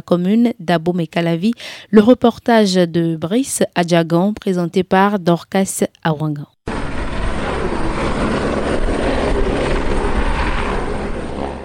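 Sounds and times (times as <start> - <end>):
speech: 0.0 - 6.6
military helicopters rotor roar passing overhead: 6.6 - 11.6.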